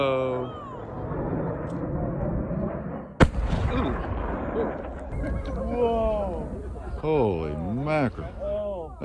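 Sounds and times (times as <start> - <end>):
rocket roaring: 0.0 - 9.0
rocket crashing with an explosive blast: 0.9 - 6.7.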